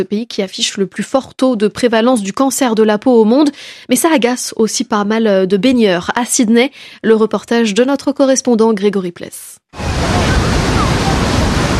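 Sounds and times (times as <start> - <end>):
speech: 0.0 - 10.3
powerful ocean waves breaking on a beach in Sydney: 9.7 - 11.7.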